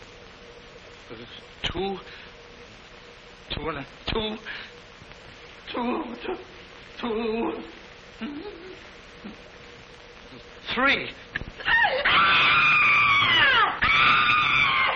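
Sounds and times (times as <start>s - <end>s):
person talking: 3.5s - 4.5s, 5.7s - 9.4s, 10.3s - 11.3s
person screaming shrill wailing screams: 11.6s - 14.9s.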